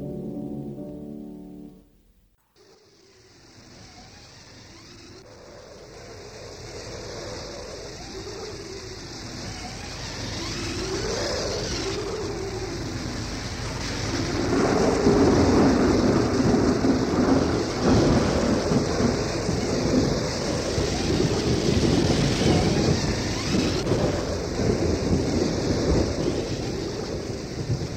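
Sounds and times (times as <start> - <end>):
low thunder rumbling: 5.2 - 27.9
rain pouring: 12.4 - 27.9.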